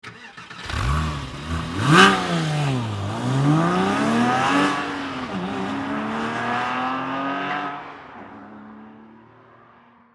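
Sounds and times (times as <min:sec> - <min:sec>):
Porsche 911 Cabriolet engine starting: 0:00.0 - 0:07.0
Porsche 911 Cabriolet accelerating: 0:00.1 - 0:09.9.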